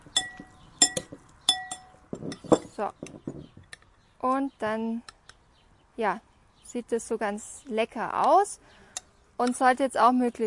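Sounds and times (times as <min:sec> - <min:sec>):
spoon clinking against a bowl while stirring a peeled carrot and algae salad: 0:00.2 - 0:01.9
speech: 0:02.8 - 0:03.1, 0:04.2 - 0:05.1, 0:06.0 - 0:08.8, 0:09.4 - 0:10.4.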